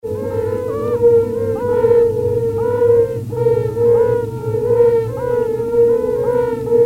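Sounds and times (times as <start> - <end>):
low droning background: 0.0 - 6.8
Yellow-bellied toad Bombina variegata chorus: 0.1 - 6.8.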